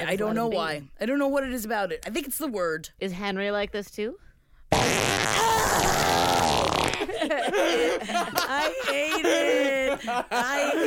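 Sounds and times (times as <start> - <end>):
speech: 0.0 - 4.2, 7.3 - 10.8
long loud buzzy fart sound: 4.7 - 7.1
laughter: 6.8 - 10.8.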